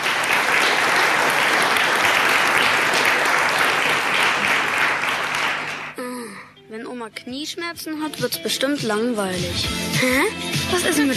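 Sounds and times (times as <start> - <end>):
audience applause: 0.0 - 6.0
speech: 7.1 - 11.1.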